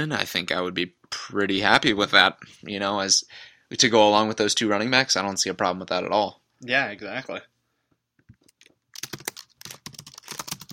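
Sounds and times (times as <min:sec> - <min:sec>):
speech: 0:00.0 - 0:07.5
computer keyboard typing: 0:08.3 - 0:10.7.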